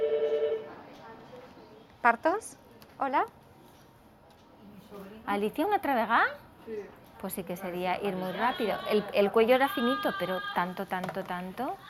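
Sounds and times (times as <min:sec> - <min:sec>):
telephone ringing with a short electronic trill in a delivery room: 0:00.0 - 0:00.7
speech: 0:02.0 - 0:03.4, 0:04.9 - 0:11.8.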